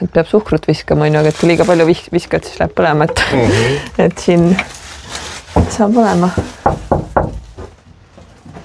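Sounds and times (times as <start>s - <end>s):
speech: 0.1s - 4.8s, 5.7s - 6.8s
knocks on a large cooking pot: 6.4s - 7.5s.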